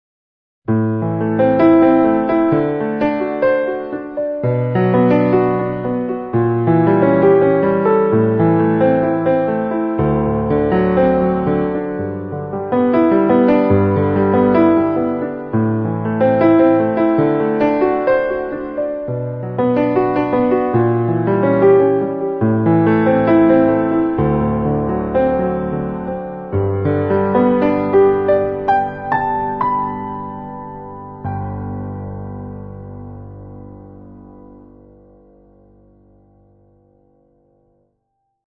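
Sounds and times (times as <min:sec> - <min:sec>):
classical piano: 0:00.7 - 0:38.0.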